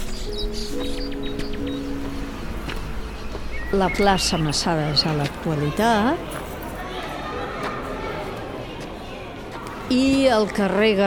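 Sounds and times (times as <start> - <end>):
birds singing among the trees of a town square: 0.0 - 6.4
speech: 3.7 - 6.4, 9.9 - 11.0.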